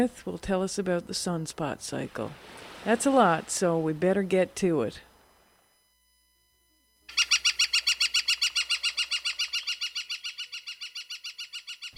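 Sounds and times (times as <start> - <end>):
speech: 0.0 - 5.1
northern flicker woodpecker calling: 7.1 - 11.9.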